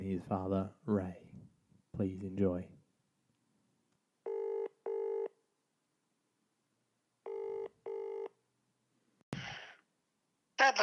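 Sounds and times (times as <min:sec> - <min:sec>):
speech: 0:00.1 - 0:01.2, 0:02.0 - 0:02.8, 0:10.6 - 0:10.8
telephone double ring: 0:04.2 - 0:05.3, 0:07.3 - 0:08.3.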